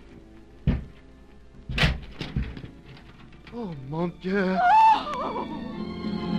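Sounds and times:
small knocks and rattles: 0.7s - 1.0s, 1.7s - 3.6s
heavy thud on a locked door being forced: 1.7s - 2.7s
speech: 3.6s - 6.2s.

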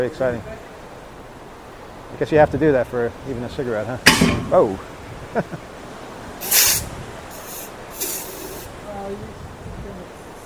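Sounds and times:
speech: 0.0s - 0.7s, 2.1s - 5.7s
fire extinguisher spraying down an ashtray: 6.4s - 8.7s.

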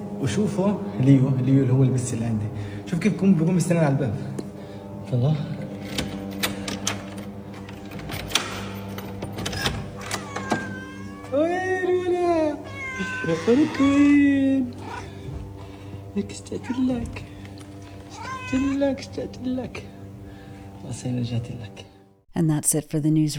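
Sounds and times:
speech: 0.2s - 4.4s, 5.1s - 5.6s, 13.2s - 14.8s, 16.2s - 17.3s, 18.5s - 19.9s, 20.8s - 23.3s
cat meowing: 10.0s - 15.2s, 16.5s - 17.3s, 17.9s - 19.0s.

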